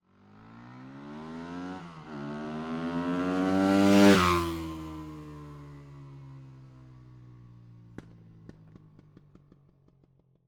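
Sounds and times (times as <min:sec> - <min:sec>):
four-stroke 498cc motorcycle passing by fast accelerating then decelerating: 0:00.1 - 0:07.6.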